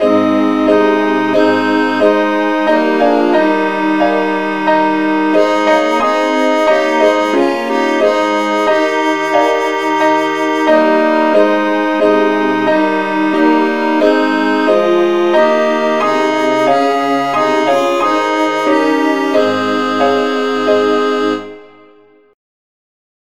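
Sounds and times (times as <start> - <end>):
SATB choir singing: 0.0 - 22.1.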